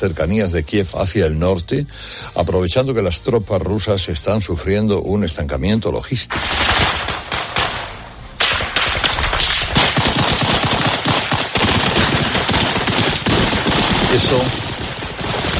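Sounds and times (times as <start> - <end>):
speech: 0.0 - 6.9, 14.2 - 14.7
bursts of automatic weapons gunfire: 6.3 - 15.5.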